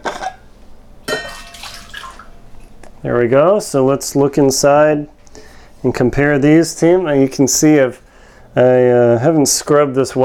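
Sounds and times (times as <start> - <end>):
water poured out of a flask: 1.3 - 2.4
speech: 3.0 - 5.2, 5.8 - 8.0, 8.6 - 10.2.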